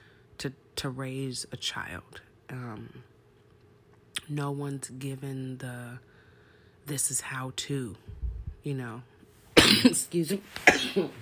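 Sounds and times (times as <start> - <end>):
speech: 0.4 - 3.1, 4.3 - 6.1, 6.8 - 11.2
person coughing forcefully: 9.6 - 11.2.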